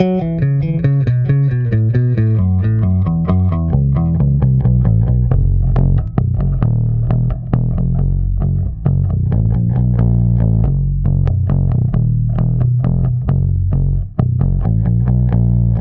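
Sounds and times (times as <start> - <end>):
bass sound: 0.0 - 15.7.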